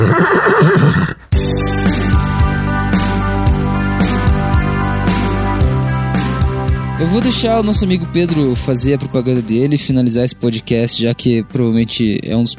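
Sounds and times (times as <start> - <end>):
horse whinnying: 0.0 - 1.4
music with a regular beat: 1.3 - 12.0
speech: 7.3 - 12.5.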